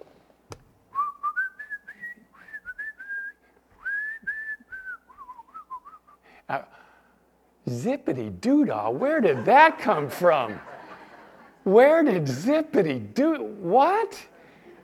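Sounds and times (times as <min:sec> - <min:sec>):
man whistling a cheerful tune in a church kitchen: 0:00.9 - 0:06.2
speech: 0:06.5 - 0:06.8, 0:07.6 - 0:10.7, 0:11.7 - 0:14.3.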